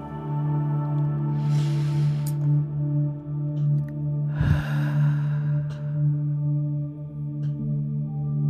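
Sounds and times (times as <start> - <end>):
steady low humming drone: 0.0 - 8.4
deep slow breathing: 1.3 - 2.7, 4.2 - 6.5.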